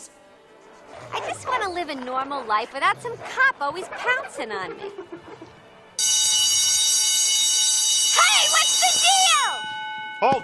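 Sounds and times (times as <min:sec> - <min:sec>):
speech: 0:01.7 - 0:05.6, 0:10.2 - 0:10.4
laughter: 0:03.7 - 0:05.8
store security tag alarm buzzing: 0:06.0 - 0:10.1.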